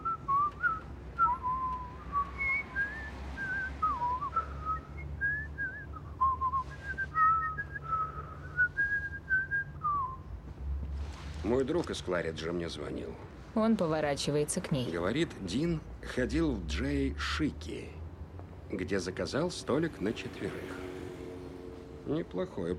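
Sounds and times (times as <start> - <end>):
people whistling a wandering tune: 0.0 - 10.3
speech: 11.5 - 18.0, 18.7 - 20.9, 22.1 - 22.7.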